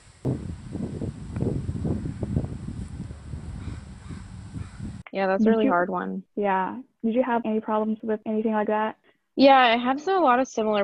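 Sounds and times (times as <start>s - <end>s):
leaves rustling in strong gusty wind: 0.0s - 5.0s
low wind rumble buffeting the microphone: 0.0s - 5.8s
speech: 0.2s - 0.5s, 5.2s - 10.8s.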